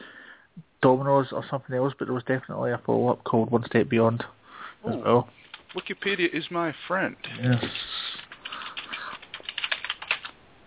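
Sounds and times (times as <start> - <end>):
speech: 0.8 - 7.8
typing on a computer keyboard: 5.4 - 6.1, 7.2 - 10.4.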